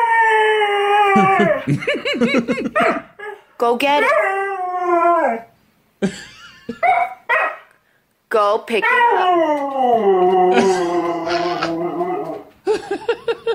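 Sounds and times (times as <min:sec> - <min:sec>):
dog howling and whining: 0:00.0 - 0:01.7, 0:02.8 - 0:05.5, 0:08.8 - 0:12.6
laughter: 0:01.2 - 0:03.0, 0:10.2 - 0:11.8, 0:12.6 - 0:13.5
speech: 0:01.2 - 0:07.0, 0:08.3 - 0:11.7
person scolding a dog: 0:10.6 - 0:11.8.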